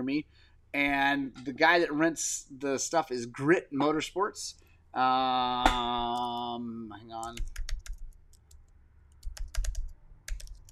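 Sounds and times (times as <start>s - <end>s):
speech: 0.0s - 7.6s
typing on a computer keyboard: 7.2s - 10.7s.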